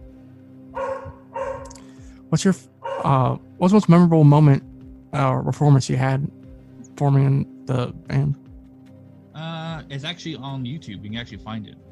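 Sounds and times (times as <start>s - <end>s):
dog barking: 0.8s - 1.8s, 2.8s - 3.4s
speech: 2.3s - 6.4s, 7.0s - 8.4s, 9.4s - 11.9s.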